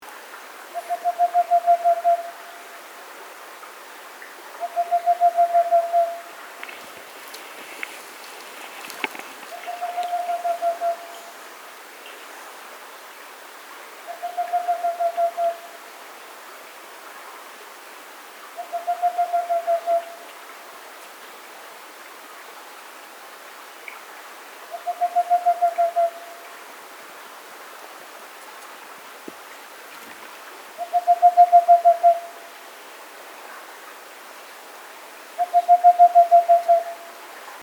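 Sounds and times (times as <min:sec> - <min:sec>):
whiskered screech owl Megascops trichopsis calling: 0:00.7 - 0:02.4, 0:04.6 - 0:11.4, 0:14.1 - 0:15.7, 0:18.6 - 0:20.2, 0:24.7 - 0:26.4, 0:30.8 - 0:32.4, 0:35.4 - 0:37.1.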